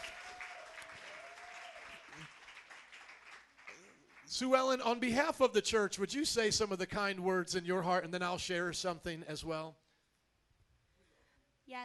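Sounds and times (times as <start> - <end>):
audience applauding with hand claps: 0.0 - 4.9
speech: 4.3 - 9.8.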